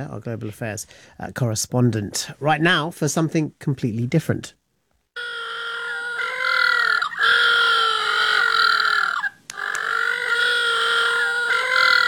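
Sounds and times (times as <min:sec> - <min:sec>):
speech: 0:00.0 - 0:04.6
little blue penguins calling: 0:05.2 - 0:12.0.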